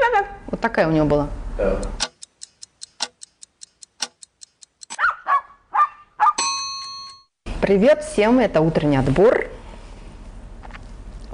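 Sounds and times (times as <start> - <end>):
speech: 0.6 - 2.0, 7.7 - 9.6
clock ticking: 1.8 - 5.0
small dog yapping: 5.0 - 6.4.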